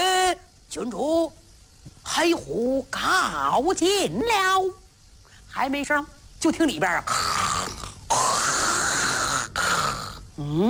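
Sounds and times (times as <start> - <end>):
speech: 0.7 - 4.8, 5.5 - 7.4, 10.4 - 10.6
storyteller imitating snoring for a sleeping man in a traditional Chinese tale: 7.1 - 10.6.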